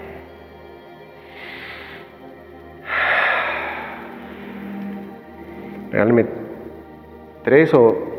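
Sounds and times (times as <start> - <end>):
deep breath in and out during a relaxation breathing exercise: 1.2 - 5.9
speech: 6.0 - 6.4, 7.4 - 8.1.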